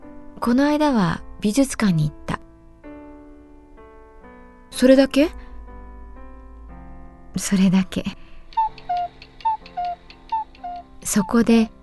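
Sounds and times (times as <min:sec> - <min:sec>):
speech: 0:00.4 - 0:02.2, 0:04.8 - 0:05.4, 0:07.4 - 0:08.2, 0:11.1 - 0:11.8
wall cuckoo clock calling: 0:08.6 - 0:11.3.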